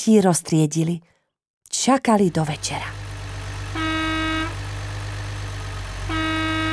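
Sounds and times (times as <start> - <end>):
speech: 0.0 - 1.1, 1.7 - 3.0
garbage truck horn honking: 2.3 - 6.7.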